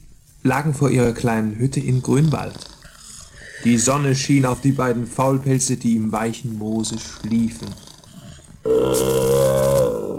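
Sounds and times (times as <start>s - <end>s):
speech: 0.4s - 2.7s, 3.6s - 7.9s, 8.6s - 9.5s
bear growling: 1.7s - 5.6s, 6.6s - 10.1s.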